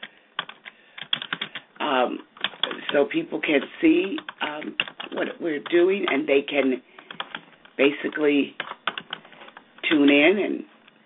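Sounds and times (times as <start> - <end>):
typing on a computer keyboard: 0.4 - 1.7, 2.3 - 3.0, 3.6 - 6.3, 7.0 - 7.8, 8.6 - 10.3
speech: 2.1 - 2.3, 2.9 - 6.9, 7.8 - 8.6, 9.9 - 10.7.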